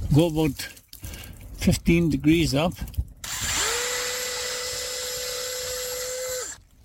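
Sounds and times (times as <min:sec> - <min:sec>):
speech: 0:00.1 - 0:00.8, 0:01.7 - 0:02.9
power drill boring into a birch tree trunk: 0:03.2 - 0:06.6.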